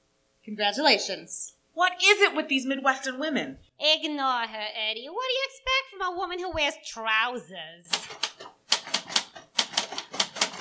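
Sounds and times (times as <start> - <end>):
speech: 0.4 - 8.5
typewriter keystrokes: 7.9 - 10.6.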